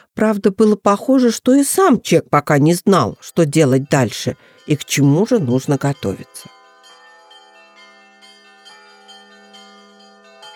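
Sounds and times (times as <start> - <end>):
speech: 0.2 - 6.6
church bells ringing in a steady peal: 2.8 - 10.5.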